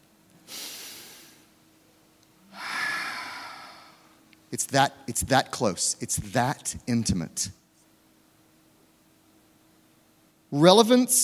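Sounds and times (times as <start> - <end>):
slow deep breaths: 2.5 - 4.2
speech: 4.5 - 7.6, 10.5 - 11.2.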